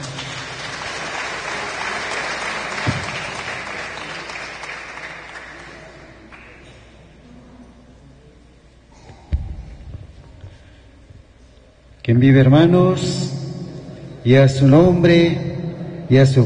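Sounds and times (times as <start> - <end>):
audience clapping hands: 0.0 - 6.8
speech: 12.1 - 13.4, 14.2 - 15.5, 16.1 - 16.4.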